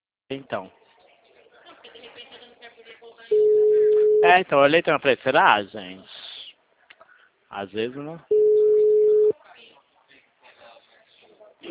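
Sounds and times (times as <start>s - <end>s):
speech: 0.3s - 0.8s, 4.2s - 6.1s, 7.5s - 8.4s
telephone busy tone after a dropped call: 3.3s - 4.3s, 8.3s - 9.3s.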